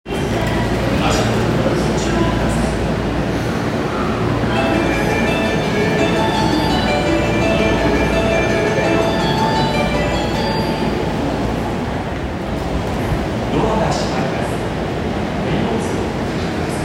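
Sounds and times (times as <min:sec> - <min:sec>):
train sounds on subway line: 0:00.1 - 0:16.8.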